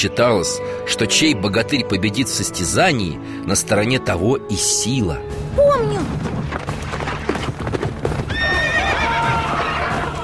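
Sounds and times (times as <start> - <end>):
speech: 0.0 - 6.3
horse hooves galloping: 6.0 - 10.2
horse whinnying: 8.2 - 10.0.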